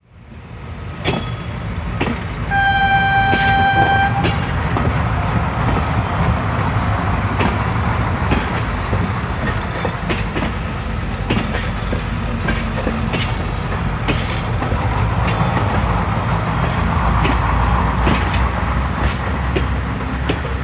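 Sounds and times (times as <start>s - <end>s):
train departing: 0.0s - 20.6s
train whistle: 2.5s - 4.6s.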